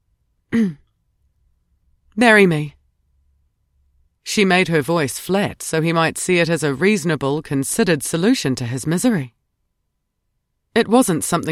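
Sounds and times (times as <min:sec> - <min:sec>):
woman clearing her throat: 0:00.5 - 0:00.9
speech: 0:02.2 - 0:02.8, 0:04.2 - 0:09.4, 0:10.8 - 0:11.4.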